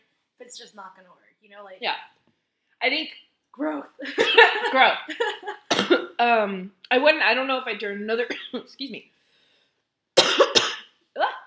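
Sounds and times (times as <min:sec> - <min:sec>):
speech: 0:00.5 - 0:09.2
person coughing: 0:05.7 - 0:06.2, 0:10.2 - 0:10.9.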